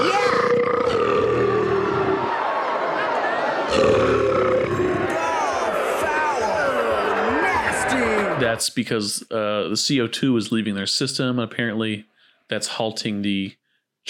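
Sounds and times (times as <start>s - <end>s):
loud drawn-out belching: 0.0s - 2.2s, 3.7s - 5.1s
grunting voices: 0.0s - 2.3s, 3.6s - 8.6s
speech: 8.6s - 14.0s.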